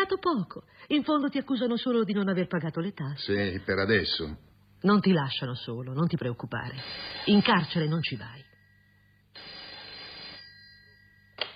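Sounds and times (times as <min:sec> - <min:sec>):
faint steady hum: 0:00.0 - 0:11.5
speech: 0:00.1 - 0:08.5
telephone bell ringing: 0:10.3 - 0:11.5.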